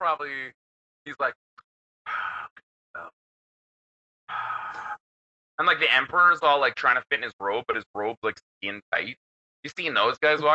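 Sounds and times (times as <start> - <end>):
speech: 0.1 - 1.4, 5.6 - 10.5
person imitating heavy wheezing respirator breathing: 2.1 - 2.5, 4.3 - 5.0.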